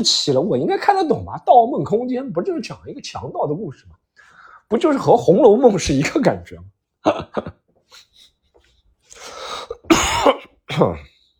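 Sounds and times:
speech: 0.0 - 4.0, 4.7 - 8.1, 10.7 - 11.1
person coughing: 9.7 - 11.1
person clearing throat: 9.8 - 11.1.

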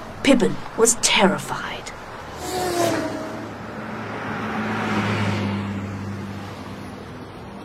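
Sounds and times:
steady rumble of engines and road noise: 0.0 - 7.6
speech: 0.2 - 1.9
cars swooshing past on a busy street: 2.0 - 7.6.

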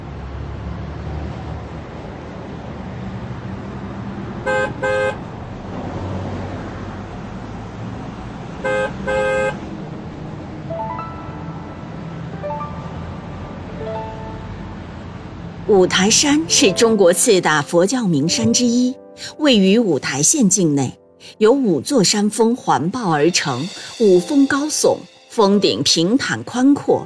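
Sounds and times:
bus engine rumbling as the bus pulls away from a bus station: 1.6 - 18.9
short double bus horn honks: 4.4 - 5.2, 8.6 - 9.7
speech: 15.7 - 27.0.

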